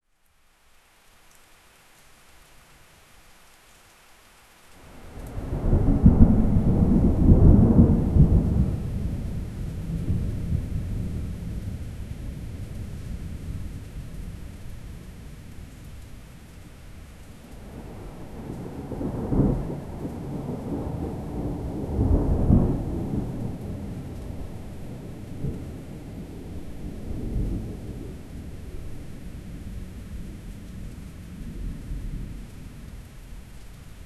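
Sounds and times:
distant thunder: 5.4 - 14.4, 17.6 - 28.8.

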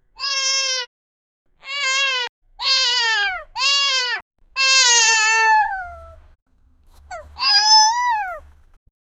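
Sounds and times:
puppy crying: 1.6 - 6.2, 7.0 - 8.6.

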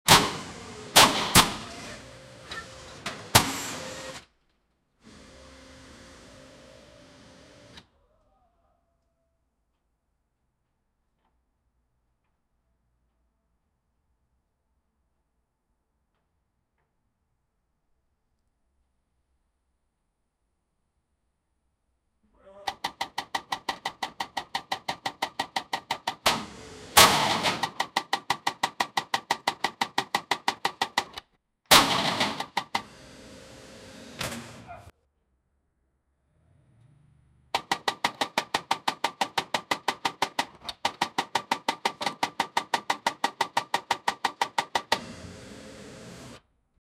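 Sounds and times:
car mechanics repairing a car: 0.0 - 8.0, 22.5 - 35.0, 36.6 - 46.5.

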